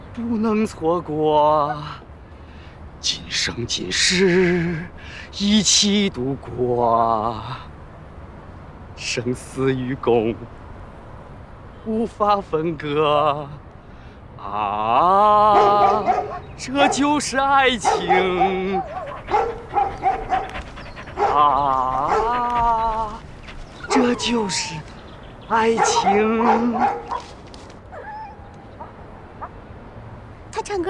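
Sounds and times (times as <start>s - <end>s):
speech: 0.2s - 2.0s, 3.0s - 7.7s, 9.0s - 10.6s, 11.8s - 13.6s, 14.4s - 19.5s, 21.3s - 23.2s, 23.9s - 24.9s, 25.5s - 27.3s, 30.6s - 30.8s
human voice imitating a dog with barks, yips and whining howls: 15.2s - 20.5s, 21.2s - 23.2s, 23.9s - 24.8s, 25.5s - 27.1s.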